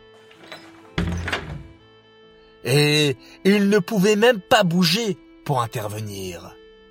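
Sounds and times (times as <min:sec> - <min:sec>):
door swinging shut with a solid thunk: 0:00.3 - 0:01.8
speech: 0:02.6 - 0:06.6.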